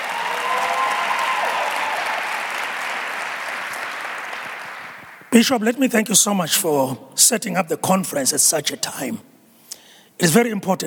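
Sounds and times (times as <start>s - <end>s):
faint cheers and whistles: 0.0s - 2.7s
large crowd at a church conference clapping: 0.0s - 5.4s
speech: 5.4s - 9.3s, 10.2s - 10.8s.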